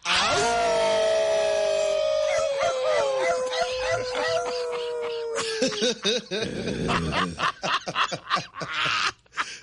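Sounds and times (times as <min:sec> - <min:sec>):
scattered whoops: 0:00.0 - 0:05.6
radio hosts howling like wolves: 0:00.0 - 0:05.7
radio hosts laughing: 0:02.7 - 0:09.6.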